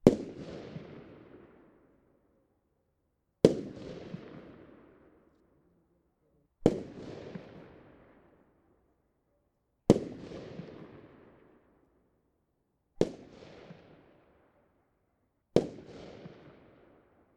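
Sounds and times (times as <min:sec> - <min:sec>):
fireworks single shots: 0:00.0 - 0:01.6, 0:03.4 - 0:04.9, 0:06.6 - 0:08.1, 0:13.0 - 0:14.0, 0:15.6 - 0:16.9.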